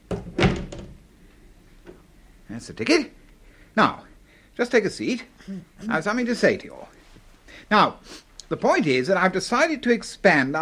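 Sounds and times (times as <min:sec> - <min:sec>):
wooden door being pushed shut into its frame: 0:00.0 - 0:01.0
speech: 0:02.6 - 0:03.2, 0:03.8 - 0:10.6.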